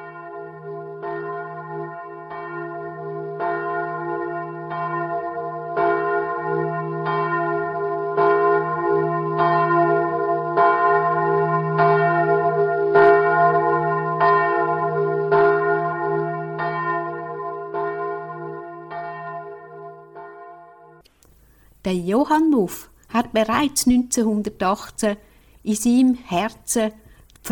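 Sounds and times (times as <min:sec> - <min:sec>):
church bell ringing: 0:00.0 - 0:21.0
speech: 0:22.1 - 0:27.5.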